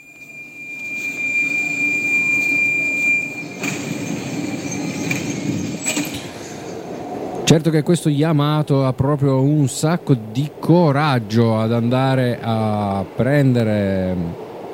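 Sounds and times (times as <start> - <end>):
thin high subway train wheel squeal: 0.0 - 7.4
subway train rumbling past: 0.0 - 14.7
brief metallic clatter: 0.1 - 6.9
speech: 7.5 - 14.4.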